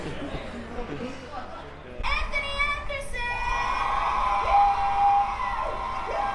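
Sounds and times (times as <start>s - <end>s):
large crowd cheering loudly: 3.2s - 6.3s.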